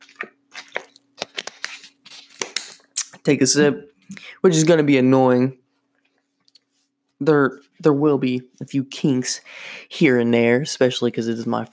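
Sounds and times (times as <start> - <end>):
water bottle being grabbed and opened at a desk: 0.0 - 2.9
speech: 3.2 - 5.6, 7.2 - 11.7.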